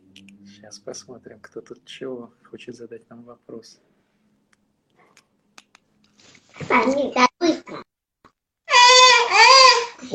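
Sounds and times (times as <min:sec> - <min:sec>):
speech: 0:00.6 - 0:03.9, 0:06.7 - 0:07.3
small child crying and shouting: 0:08.7 - 0:10.1.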